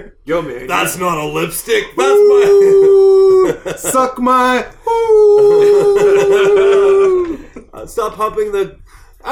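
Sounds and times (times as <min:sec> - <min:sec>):
speech: 0:00.0 - 0:06.5, 0:07.9 - 0:09.2
laughter: 0:02.0 - 0:08.0
person imitating a wolf howl: 0:02.1 - 0:03.6, 0:04.9 - 0:07.4.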